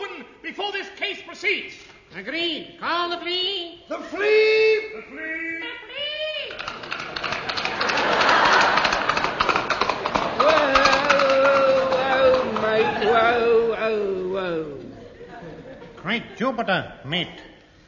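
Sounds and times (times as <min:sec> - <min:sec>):
speech: 0:00.5 - 0:05.8, 0:16.0 - 0:17.5
laughter: 0:05.0 - 0:16.8
horse hooves clip-clopping: 0:06.5 - 0:13.4
noisy background of voices: 0:10.0 - 0:16.0.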